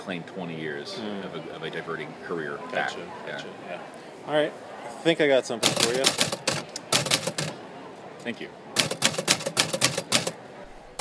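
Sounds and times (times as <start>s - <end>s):
speech: 0.0s - 6.4s, 8.2s - 8.6s
typewriter keys clacking: 5.6s - 7.6s, 8.8s - 11.0s.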